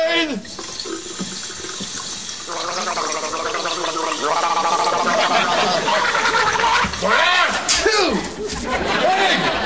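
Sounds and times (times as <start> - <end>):
person gargling blue toilet bowl cleaner: 2.5 - 5.9
laughter: 4.4 - 9.6.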